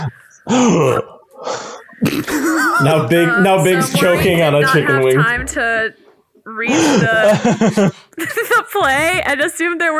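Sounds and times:
person acting out a startled voiced gasp: 0:00.0 - 0:02.0, 0:06.7 - 0:07.2
speech: 0:00.0 - 0:09.9
laughter: 0:02.0 - 0:05.1, 0:06.7 - 0:08.6.

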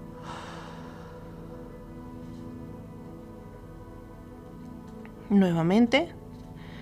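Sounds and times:
deep breath in and out during a guided breathing exercise: 0:00.0 - 0:02.5
soft steady humming drone: 0:00.0 - 0:06.8
speech: 0:05.3 - 0:06.2.

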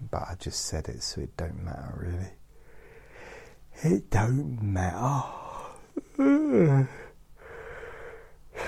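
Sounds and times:
speech: 0:00.1 - 0:02.4, 0:03.8 - 0:05.4, 0:06.2 - 0:07.0
long breathy exhale: 0:02.6 - 0:03.6, 0:06.9 - 0:08.6
person yawning with a voiced groan: 0:05.0 - 0:07.2.

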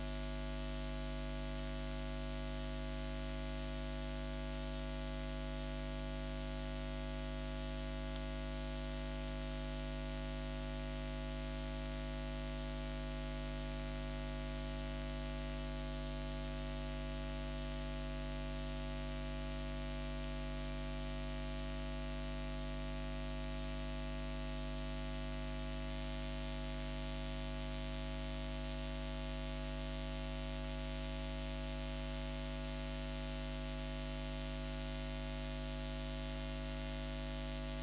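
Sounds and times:
loud steady electrical hum with buzzing overtones in VLF radio recording: 0:00.1 - 0:37.8
constant hiss in VLF radio recording: 0:29.4 - 0:36.2.

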